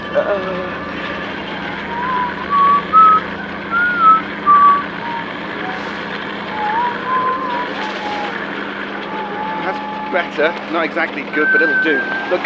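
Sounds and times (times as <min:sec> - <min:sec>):
constant low rumble: 0:00.0 - 0:12.4
person whistling a bright cheerful tune: 0:01.5 - 0:05.9, 0:06.5 - 0:08.4, 0:11.4 - 0:12.4
speech: 0:10.2 - 0:12.4.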